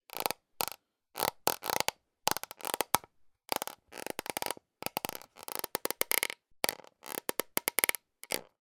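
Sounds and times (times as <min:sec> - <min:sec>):
plastic creaks: 0:00.1 - 0:08.5.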